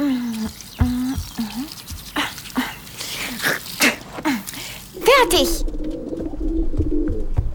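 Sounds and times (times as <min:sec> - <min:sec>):
tooth brushing scrubbing strokes: 0:00.0 - 0:04.9
running water: 0:00.0 - 0:05.4
speech: 0:05.2 - 0:05.7
deeper thumps: 0:05.6 - 0:07.5.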